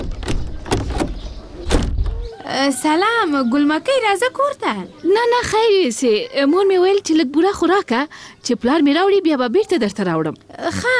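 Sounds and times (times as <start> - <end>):
door being opened in a home: 0.0 - 2.3
speech: 2.5 - 10.9.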